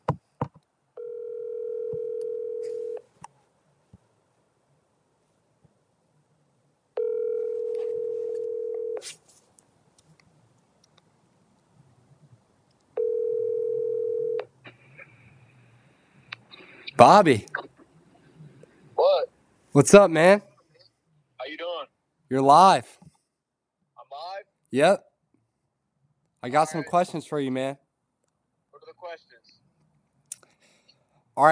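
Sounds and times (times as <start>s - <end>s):
phone call ringback tones down the line: 1.0s - 3.0s, 7.0s - 9.0s, 13.0s - 14.4s
speech: 17.0s - 17.6s, 19.8s - 20.5s, 22.3s - 23.0s, 24.7s - 25.0s, 26.4s - 27.8s.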